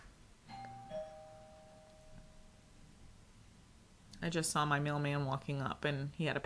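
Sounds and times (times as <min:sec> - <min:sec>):
quiet noise: 0:00.0 - 0:06.4
two-tone doorbell chime: 0:00.5 - 0:02.7
speech: 0:04.2 - 0:06.4.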